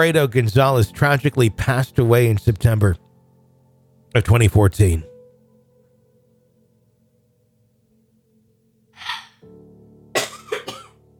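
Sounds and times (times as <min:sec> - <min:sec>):
speech: 0:00.0 - 0:03.0, 0:04.1 - 0:05.1
sharp breath in: 0:09.0 - 0:09.4
harsh coughs: 0:10.2 - 0:11.0.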